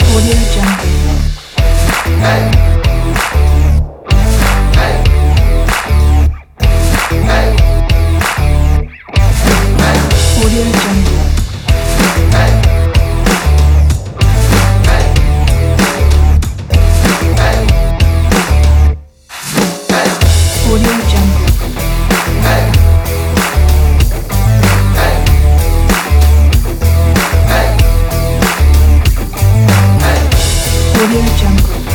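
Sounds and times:
electro rock beat: 0:00.0 - 0:31.9.

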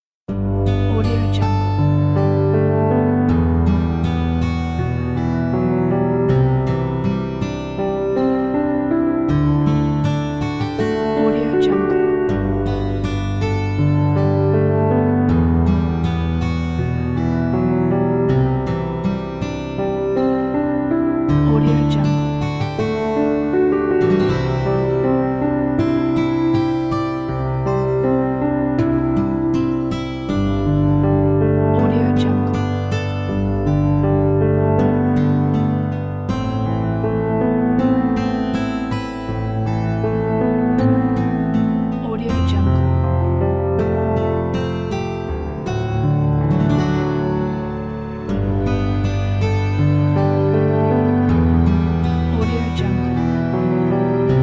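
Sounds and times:
romantic guitar: 0:00.3 - 0:54.4
romantic piano: 0:00.3 - 0:54.4.

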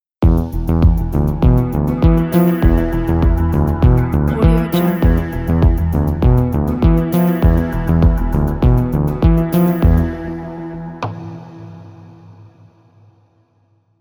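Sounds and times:
techno rhythm logo: 0:00.2 - 0:11.0.

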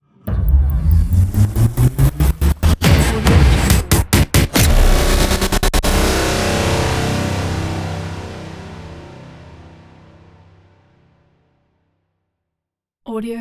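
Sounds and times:
stutter risers: 0:00.3 - 0:09.0.

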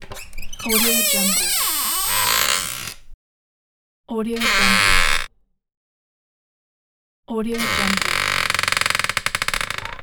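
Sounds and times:
door creaking: 0:00.0 - 0:03.2, 0:04.4 - 0:05.3, 0:07.5 - 0:10.0.

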